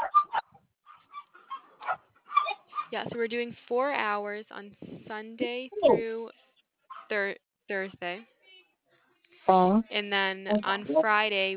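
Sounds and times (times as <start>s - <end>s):
dogs barking: 0.0s - 2.9s
speech: 2.9s - 6.4s, 7.1s - 8.3s, 9.5s - 11.5s.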